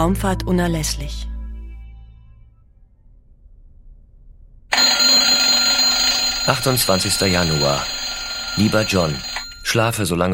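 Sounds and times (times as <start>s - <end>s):
speech: 0.0s - 1.3s, 6.5s - 8.0s, 8.6s - 10.3s
faint low hum aboard the Mir space station: 0.0s - 4.7s
master alarm blaring aboard the Mir space station: 4.7s - 9.8s.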